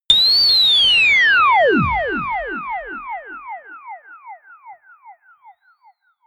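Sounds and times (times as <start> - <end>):
high ululation ufo sound: 0.1 - 4.0.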